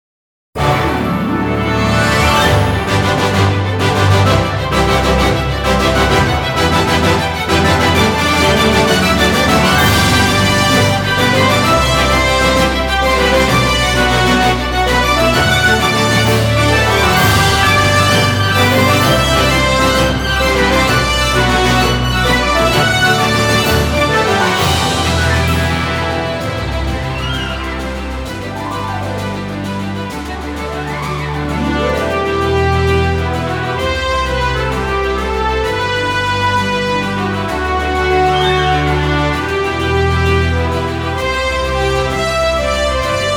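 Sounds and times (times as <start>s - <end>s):
fanfare: 0.6s - 43.3s.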